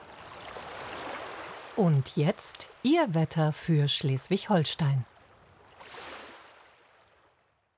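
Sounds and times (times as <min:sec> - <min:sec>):
small wave washing ashore in Schleswig-Holstein, Germany: 0:00.0 - 0:01.8, 0:05.1 - 0:07.4
speech: 0:01.8 - 0:05.1.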